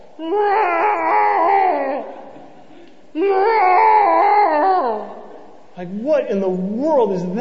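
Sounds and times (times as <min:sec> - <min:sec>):
speech: 0:00.2 - 0:00.6, 0:06.2 - 0:07.3
cat howling: 0:00.2 - 0:02.2, 0:03.2 - 0:05.4.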